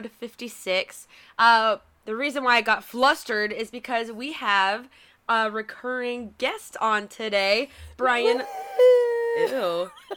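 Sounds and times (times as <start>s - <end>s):
speech: 0.0s - 10.1s
dog attempting a howl: 8.2s - 9.7s.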